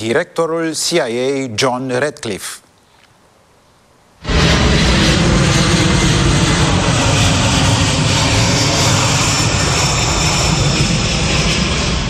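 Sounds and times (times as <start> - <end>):
speech: 0.0 - 2.6
large military C-17 transport aircraft jet engines roaring: 4.2 - 12.0.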